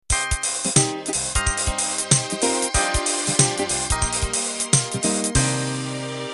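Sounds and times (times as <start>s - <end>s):
swing rock ending: 0.1s - 6.2s.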